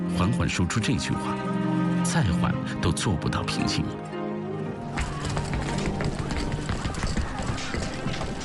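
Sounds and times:
speech: 0.2s - 1.5s, 2.1s - 4.1s
many footsteps of a group tramping along: 4.9s - 8.4s.

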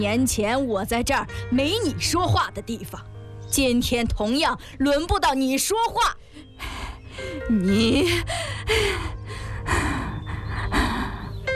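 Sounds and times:
speech: 0.0s - 9.2s
old woman panting in anger in a chair: 8.2s - 11.4s.

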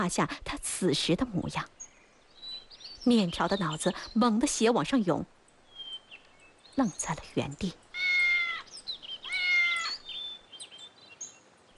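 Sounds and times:
speech: 0.0s - 1.8s, 3.0s - 5.4s, 6.8s - 8.1s
white cat meowing: 7.9s - 10.0s.

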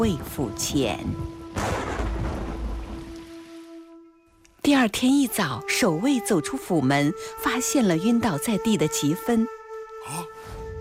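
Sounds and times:
speech: 0.0s - 1.9s, 4.7s - 10.2s
deep roll of thunder rumbling: 0.0s - 3.4s
steady downpour of heavy rain: 0.0s - 3.7s.

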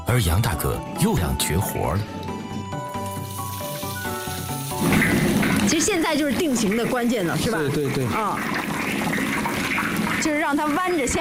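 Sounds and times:
speech: 0.1s - 2.4s, 5.7s - 9.1s, 10.2s - 11.1s
whole battered fish about four kilograms deep-frying in hot oil: 2.9s - 11.1s.

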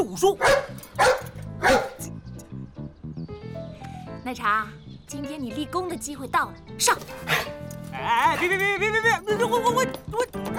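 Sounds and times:
speech: 0.0s - 0.8s, 4.3s - 10.5s
dog barking: 0.4s - 2.0s, 7.2s - 7.6s.

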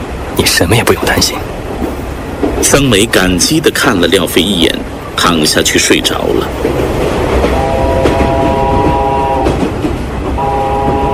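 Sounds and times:
passenger train running along the rails: 0.0s - 11.1s
speech: 0.6s - 1.6s, 2.6s - 7.0s
sustained horn-like tones: 7.5s - 9.6s, 10.4s - 11.1s.

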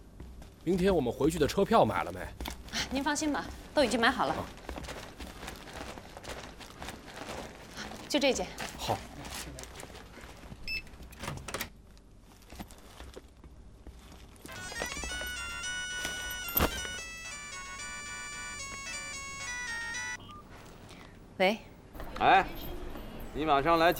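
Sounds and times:
speech: 0.7s - 4.6s, 8.1s - 9.1s, 21.4s - 22.6s, 23.4s - 23.9s
melodic phone ringtone tune during an outgoing call: 14.5s - 20.5s.

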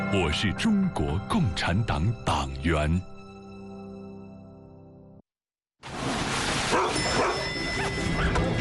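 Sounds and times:
speech: 0.1s - 3.1s
dog barking: 6.7s - 8.4s.

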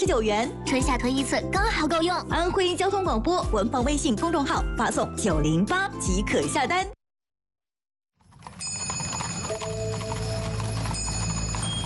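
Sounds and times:
speech: 0.0s - 7.0s
horse hooves clip-clopping along an old merchant road: 8.2s - 11.8s.

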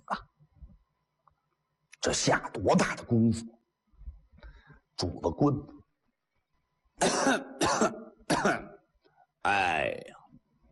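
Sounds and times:
performed harsh rasping coughing and throat clearing: 0.0s - 0.4s, 7.0s - 8.9s
speech: 0.1s - 0.3s, 2.0s - 3.6s, 5.0s - 5.8s, 7.0s - 8.6s.

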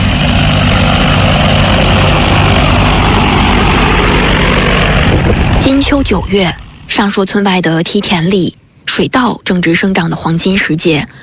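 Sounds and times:
agricultural spraying drone propellers whirring: 0.0s - 8.3s
speech: 5.9s - 11.2s.

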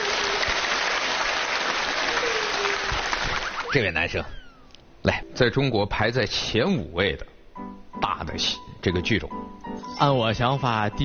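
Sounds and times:
opera audience applause: 0.0s - 3.8s
speech: 3.7s - 4.4s, 5.0s - 11.0s.

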